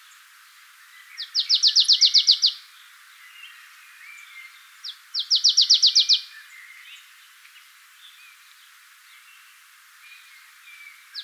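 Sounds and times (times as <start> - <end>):
marsh tit Poecile palustris giving rattling phrases: 1.3 - 2.6, 4.8 - 6.2.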